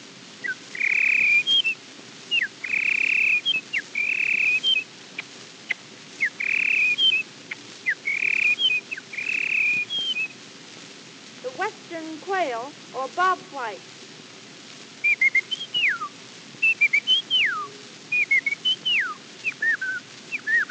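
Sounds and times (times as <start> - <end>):
faint hiss: 0.0 - 20.6
red-winged blackbird call: 0.4 - 4.8, 6.2 - 7.2, 7.8 - 10.3, 15.0 - 20.6
speech: 12.5 - 14.0.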